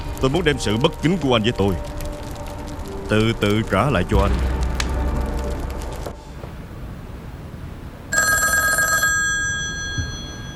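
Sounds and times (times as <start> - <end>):
low hum: 0.0 - 10.5
speech: 0.2 - 2.0, 3.1 - 4.5
telephone bell ringing: 8.1 - 10.5.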